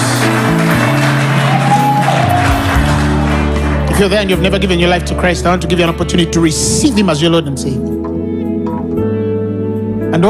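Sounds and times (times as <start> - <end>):
congregation clapping and cheering: 0.0 - 5.2
loud sustained music: 0.0 - 10.2
speech: 4.0 - 8.0.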